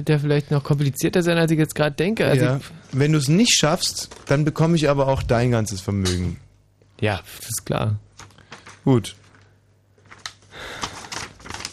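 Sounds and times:
speech: 0.0 - 8.1, 8.8 - 9.2
sheet of paper being folded and creased: 3.8 - 4.8, 8.1 - 11.7.

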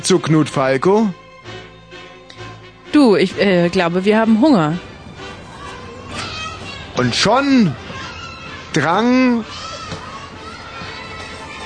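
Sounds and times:
speech: 0.0 - 1.2, 3.0 - 4.9, 7.0 - 7.8, 8.7 - 9.6
many children shouting and yelling: 5.0 - 11.6.

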